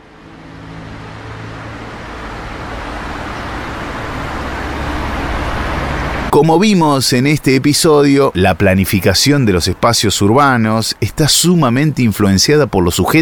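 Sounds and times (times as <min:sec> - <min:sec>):
car traffic on a busy road: 0:00.0 - 0:13.2
speech: 0:06.3 - 0:13.2.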